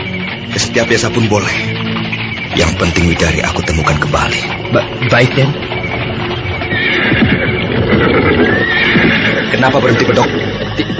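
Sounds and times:
hooves clattering: 0.0 - 10.9
speech: 0.6 - 1.8, 2.6 - 5.8, 9.5 - 10.9
horse neighing: 6.4 - 10.9.

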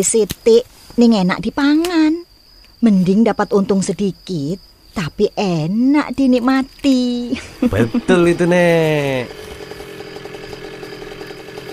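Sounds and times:
speech: 0.0 - 9.6
laughter: 7.3 - 9.4
arriving motorcycle engine putter: 9.2 - 11.7.

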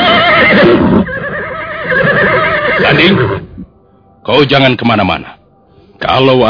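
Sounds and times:
horse neighing: 0.0 - 3.6
speech: 3.0 - 3.3, 4.3 - 5.4, 6.0 - 6.4.

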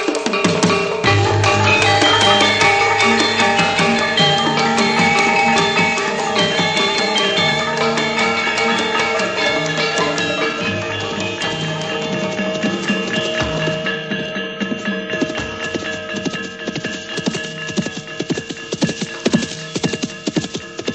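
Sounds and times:
dense sustained musical backdrop: 0.0 - 20.9
hoofbeats of a galloping horse: 0.0 - 20.9.

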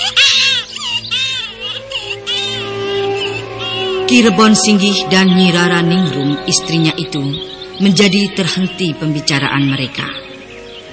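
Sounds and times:
baby crying in high-pitched wailing bursts: 0.0 - 6.8
speech: 4.1 - 10.3.

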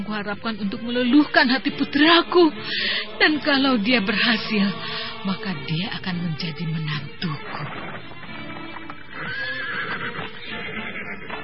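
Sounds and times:
speech: 0.1 - 8.1
horse hooves clopping: 7.4 - 11.4
horse whinnying: 7.4 - 11.4.

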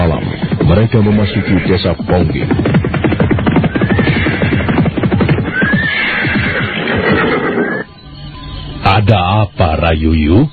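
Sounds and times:
horse hooves clip-clopping while riding: 0.0 - 7.8
horses neighing: 0.0 - 7.9
speech: 0.8 - 3.0, 9.1 - 10.5.

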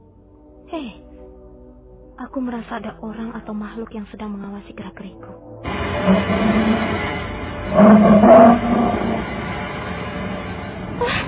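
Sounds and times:
speech: 0.7 - 1.1, 2.2 - 7.1
tiger roaring: 5.7 - 7.1, 7.7 - 9.3.

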